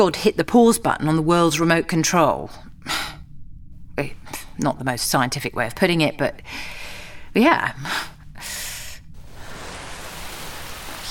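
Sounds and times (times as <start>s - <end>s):
speech: 0.0s - 3.0s, 4.0s - 6.8s, 7.4s - 8.6s
hand sweeping through rain frozen in midair: 9.2s - 11.1s.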